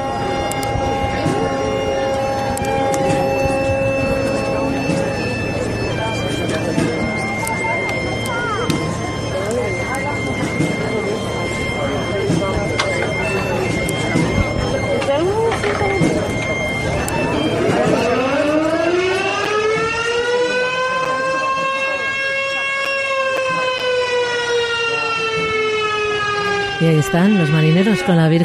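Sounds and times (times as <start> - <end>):
crowd murmur and voices: 0.0 - 28.4
ship sirens blaring during maritime procession: 0.0 - 28.4
speech: 27.1 - 28.4.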